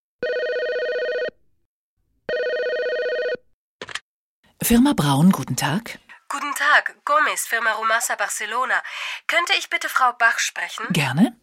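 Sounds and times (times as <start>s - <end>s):
electronic office telephone ringing: 0.2s - 1.4s, 2.3s - 3.5s
speech: 4.6s - 11.4s.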